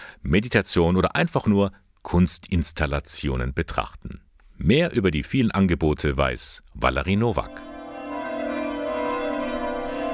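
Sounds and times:
speech: 0.2 - 7.7
church bells ringing: 7.5 - 10.1.

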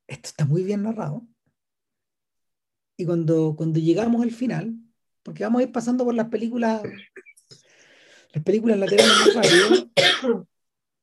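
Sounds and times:
speech: 0.4 - 1.4, 3.0 - 7.3, 8.3 - 10.5
woman coughing: 8.9 - 10.4.

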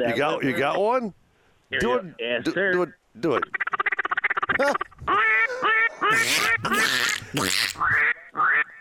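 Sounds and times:
speech: 0.0 - 3.6, 4.6 - 8.5
mallard duck call blown, quacking: 3.4 - 8.7.

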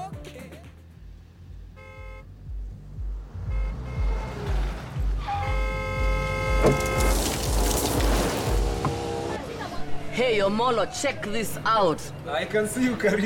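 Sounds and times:
car engine rumbling as the vehicle rolls up: 0.7 - 13.2
car horn toots: 1.7 - 2.4, 3.4 - 7.8
speech: 6.7 - 6.9, 10.2 - 13.2.

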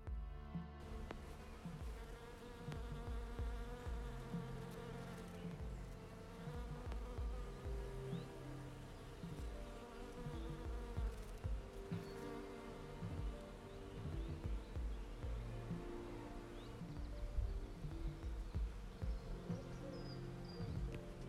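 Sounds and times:
many bees buzzing around a blossoming cherry tree: 0.0 - 21.2
soft low rumbles: 0.0 - 21.2.

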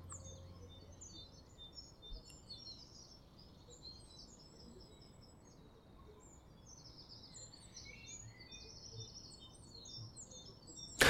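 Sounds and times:
many small birds chirping and twittering outdoors: 0.0 - 11.0.

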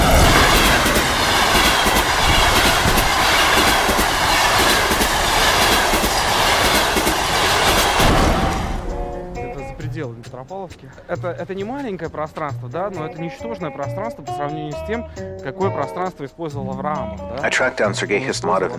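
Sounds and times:
train clattering along rails: 0.0 - 12.2
speech: 10.4 - 18.7.

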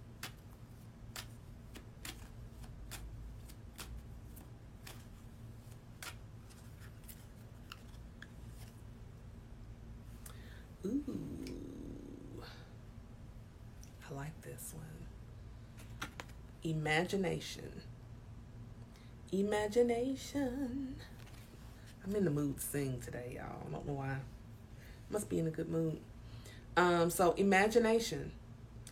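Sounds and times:
low hum: 0.0 - 19.1
deck of oracle cards being shuffled by hand: 0.1 - 8.9, 15.8 - 16.4
speech: 14.1 - 15.1, 16.6 - 17.9, 19.3 - 21.2, 22.0 - 24.4, 25.1 - 26.1, 26.8 - 28.4.

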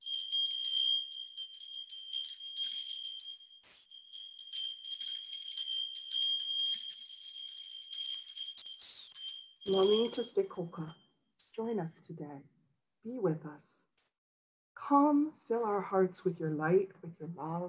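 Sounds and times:
small ceremonial bells ringing to call in the spirits: 0.0 - 11.9
speech: 9.7 - 11.0, 11.6 - 13.9, 14.8 - 17.6.

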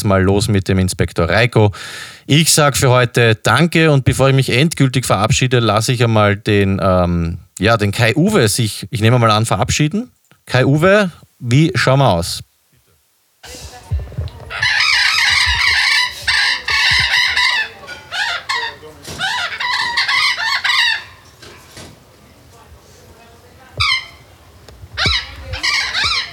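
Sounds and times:
speech: 0.0 - 12.5, 13.4 - 14.8
burrowing parrot screeching loudly: 14.5 - 21.4, 23.8 - 24.3, 25.0 - 26.3.

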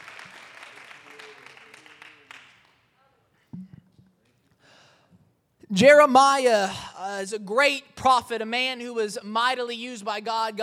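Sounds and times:
crowd applauding: 0.0 - 2.8
speech: 5.7 - 10.6.

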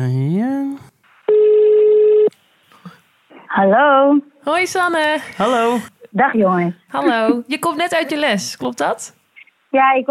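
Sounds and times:
loud steady buzzing telephone ring tone during a call: 1.3 - 2.3
speech: 3.6 - 10.1.

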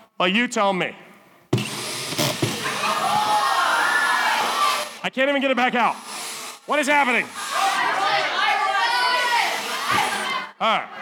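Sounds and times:
speech: 0.2 - 1.0, 5.0 - 6.1, 6.7 - 7.4, 10.6 - 10.9
drill motor whining: 1.6 - 5.0, 5.9 - 10.3.

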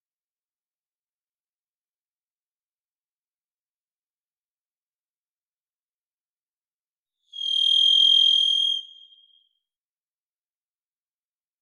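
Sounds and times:
varied thrush Ixoreus naevius whistled song in Washington: 7.4 - 9.3.

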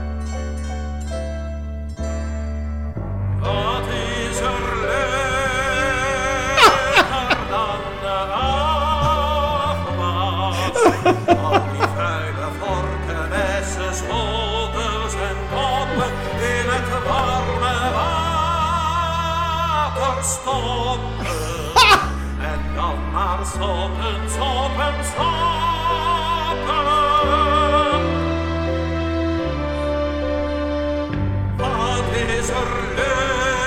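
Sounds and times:
instrumental backing music: 0.0 - 33.6
person singing a song about washing dishes: 3.4 - 30.7, 31.6 - 33.6
laughter: 5.6 - 18.7, 21.1 - 22.3.

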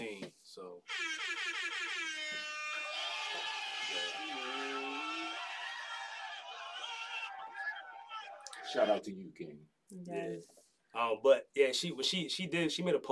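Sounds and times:
air horn sound effect blaring: 0.9 - 5.8
laughter: 1.0 - 9.0
speech: 8.7 - 13.1.

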